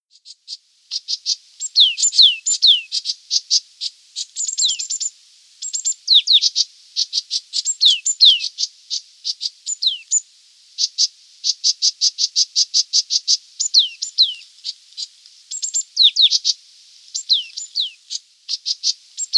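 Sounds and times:
green-backed tit Parus monticolus chirping and whistling: 1.6 - 2.9, 4.4 - 6.6, 7.6 - 8.5, 9.7 - 10.2, 15.5 - 16.4, 17.2 - 18.0, 18.6 - 19.3.

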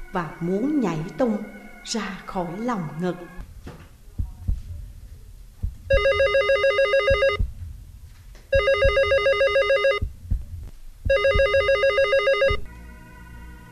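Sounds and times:
speech: 0.1 - 3.4
telephone bell ringing: 6.0 - 7.4, 8.6 - 10.0, 11.1 - 12.7.

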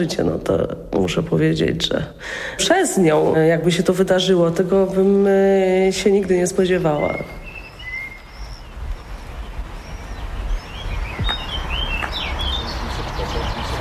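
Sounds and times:
speech: 0.0 - 7.4
low noise: 0.0 - 13.7
birds singing outside a house: 6.6 - 13.7.

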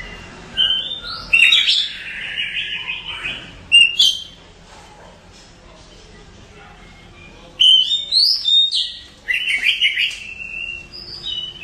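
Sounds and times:
Oriental magpie-robin whistling and chattering: 0.0 - 4.4, 6.9 - 11.6.

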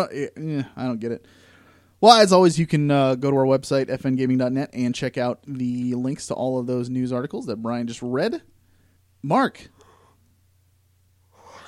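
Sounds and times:
speech: 0.0 - 8.5, 9.2 - 9.8
faint steady electrical hum: 0.0 - 11.6
breathy yawn: 11.3 - 11.6.

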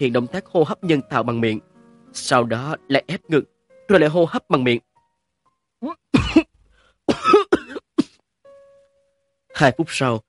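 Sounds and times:
speech: 0.0 - 4.9, 5.8 - 6.5, 9.6 - 10.2
person coughing up water after resuscitation following near-drowning: 5.8 - 6.5, 7.1 - 8.2.

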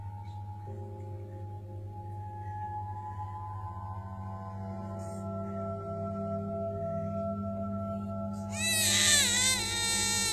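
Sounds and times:
steady low tones: 0.0 - 10.3
baby crying: 8.5 - 10.3.

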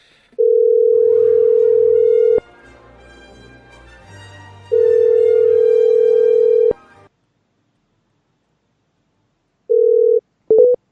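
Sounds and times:
telephone ringback tones during an outgoing call: 0.4 - 2.4, 4.7 - 6.8, 9.7 - 10.8.

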